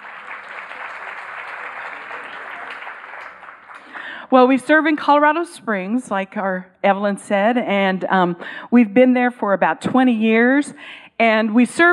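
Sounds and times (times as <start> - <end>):
crowd applauding: 0.0 - 4.2
speech: 4.3 - 11.9.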